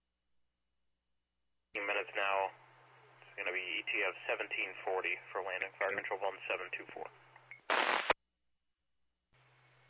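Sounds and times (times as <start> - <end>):
speech: 2.0 - 2.6, 3.4 - 7.2
radio static: 3.3 - 7.1, 7.7 - 8.2.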